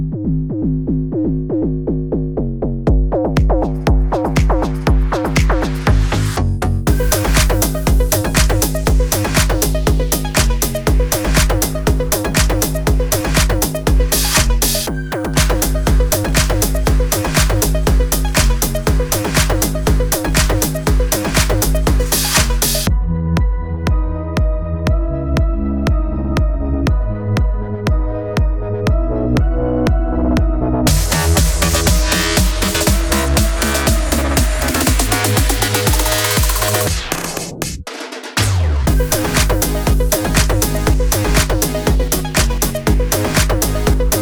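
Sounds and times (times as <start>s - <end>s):
beat: 0.2s - 44.2s.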